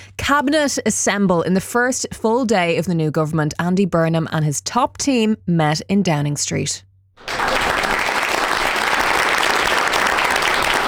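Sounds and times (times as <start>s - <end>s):
speech: 0.2s - 7.3s
large group applauding a new prime minister: 7.2s - 10.8s.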